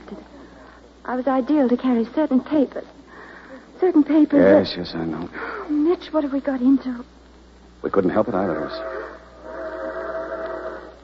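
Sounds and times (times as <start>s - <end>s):
speech: 1.1s - 3.0s, 3.8s - 7.2s, 7.8s - 9.0s
train whistle blast: 8.5s - 11.0s.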